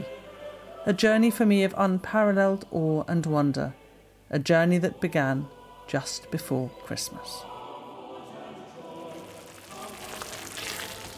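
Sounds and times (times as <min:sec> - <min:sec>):
speech: 0:00.8 - 0:07.5
sauce bubbling and sizzling in a frying pan: 0:09.1 - 0:11.1.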